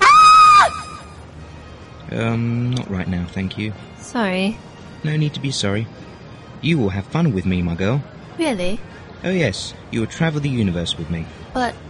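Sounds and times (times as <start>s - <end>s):
woman screaming: 0.0s - 1.1s
speech: 2.1s - 6.0s, 6.6s - 11.8s.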